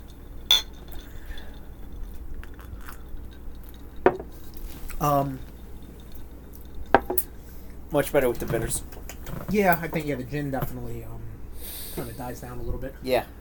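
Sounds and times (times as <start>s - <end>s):
drinking glasses clinking in a toast: 0.0s - 9.0s
speech: 5.0s - 5.5s, 7.9s - 8.9s, 9.5s - 11.2s, 12.0s - 13.3s.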